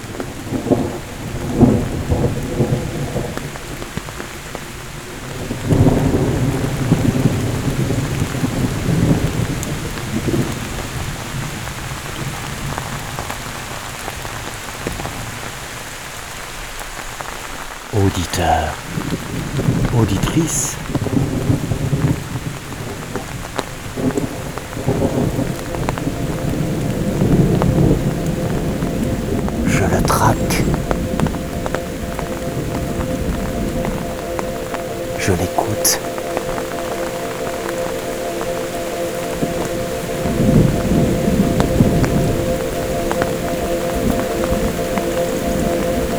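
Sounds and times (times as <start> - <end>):
steady rain pattering in a light thunderstorm: 0.0 - 46.1
man speaking quietly: 18.0 - 18.9, 19.9 - 20.8, 29.6 - 30.7, 35.2 - 36.1
speech: 18.2 - 18.8, 20.0 - 20.8.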